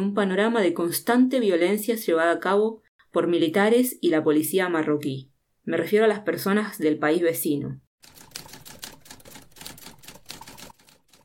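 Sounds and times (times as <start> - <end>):
speech: 0.0 - 7.8
typewriter keys clacking: 8.0 - 11.2.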